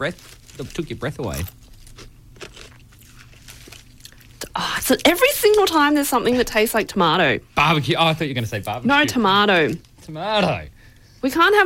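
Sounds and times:
speech: 0.0s - 1.6s, 4.9s - 11.6s
teeth crunching a potato chip: 0.0s - 4.4s.

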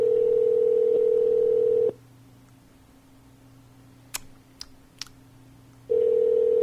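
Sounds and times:
phone call ringback tone: 0.0s - 2.0s, 5.9s - 6.6s.

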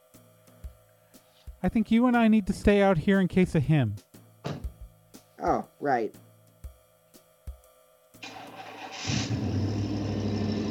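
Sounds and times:
speech: 1.6s - 4.1s, 5.4s - 6.2s
car engine starting and revving: 8.2s - 10.6s.

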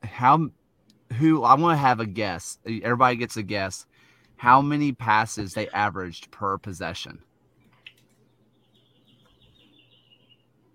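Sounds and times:
low steady hum: 0.0s - 10.7s
speech: 0.2s - 7.3s
birds chirping from a nest: 7.6s - 10.7s.

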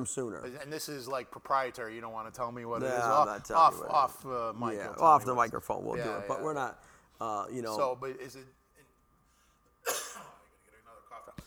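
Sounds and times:
speech: 0.0s - 8.6s
person coughing sharply: 9.8s - 10.4s.

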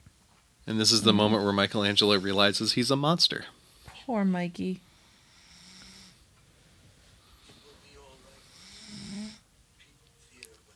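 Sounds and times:
speech: 0.7s - 4.9s
person snoring with rasping drawn-out breaths: 8.6s - 9.4s.

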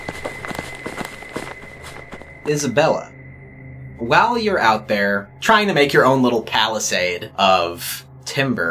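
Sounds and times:
hurried footsteps of two people carrying firewood back to camp: 0.0s - 2.7s
speech: 2.4s - 3.2s, 4.0s - 8.7s.

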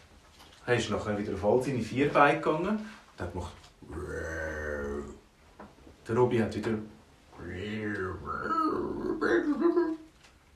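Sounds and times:
speech: 0.7s - 4.4s, 6.1s - 7.5s
voice imitating a polar bear's low rumbling grunt: 3.8s - 5.2s, 7.4s - 10.1s.

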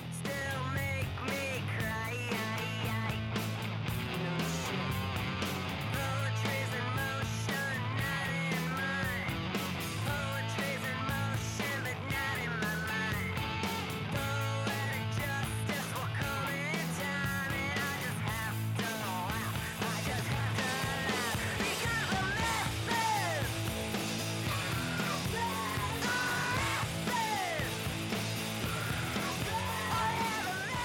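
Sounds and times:
driving drums in a grunge-punk song: 0.0s - 30.8s
heavy distorted guitars in a grunge-punk song: 0.0s - 30.8s
raw shouted vocals in a grunge-punk song: 19.8s - 23.7s, 24.3s - 30.8s.

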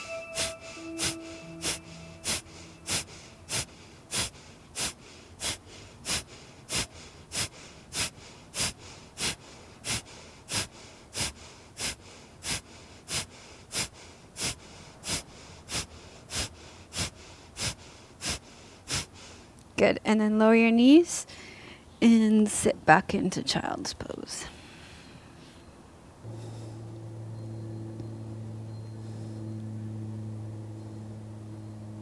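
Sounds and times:
rapid forceful exhalations through the nose in Kapalabhati breathing during yoga: 0.1s - 19.5s, 26.2s - 27.0s
speech: 19.8s - 21.1s, 22.0s - 24.1s.

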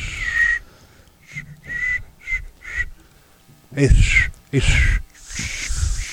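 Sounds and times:
person attempting to whistle through dentures: 0.0s - 0.6s, 1.2s - 3.0s, 3.9s - 6.1s.

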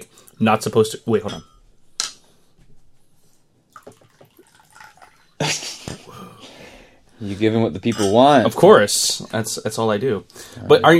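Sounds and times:
speech: 0.4s - 1.5s, 7.2s - 10.9s
tea pouring into a cup: 3.7s - 5.4s.

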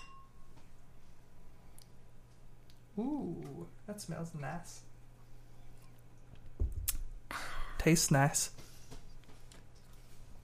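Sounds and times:
beer glasses clinking in a toast: 0.0s - 0.4s
low hum: 0.0s - 10.4s
speech: 3.0s - 4.9s, 7.8s - 8.7s.

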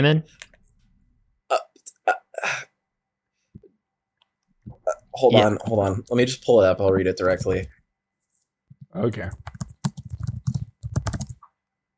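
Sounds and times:
speech: 0.0s - 0.4s, 1.5s - 1.7s, 5.2s - 7.8s, 9.0s - 9.6s
computer keyboard typing: 7.2s - 7.7s, 9.1s - 11.5s.

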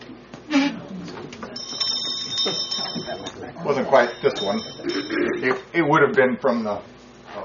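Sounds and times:
small bright hand bell ringing: 1.6s - 5.3s
speech: 3.5s - 6.9s.

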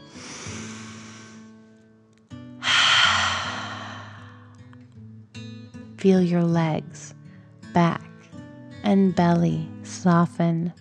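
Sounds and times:
deep breath in: 0.0s - 1.5s, 2.6s - 4.6s
soft sustained music: 0.0s - 10.7s
forceful rushing exhale: 0.1s - 1.5s, 2.6s - 4.5s
speech: 6.0s - 8.0s, 8.9s - 10.7s.

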